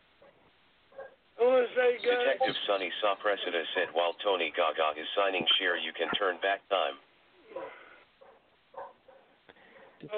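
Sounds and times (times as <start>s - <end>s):
dog barking: 0.2s - 1.2s, 7.5s - 10.1s
speech: 1.8s - 7.7s.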